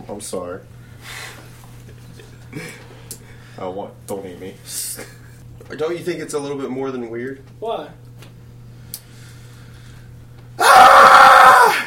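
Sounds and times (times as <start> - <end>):
speech: 0.1 - 1.3, 2.5 - 2.8, 3.6 - 8.0
person screaming: 10.6 - 11.8.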